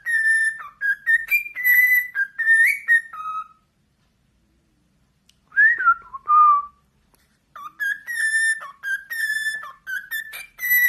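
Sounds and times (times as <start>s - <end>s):
several cockatiels whistling a simple tune: 0.0s - 3.6s, 7.6s - 10.8s.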